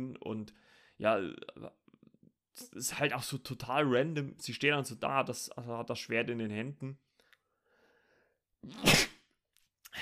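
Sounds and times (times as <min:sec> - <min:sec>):
speech: 0:00.0 - 0:01.8, 0:02.6 - 0:07.1, 0:08.6 - 0:09.1
person sneezing: 0:08.6 - 0:09.3.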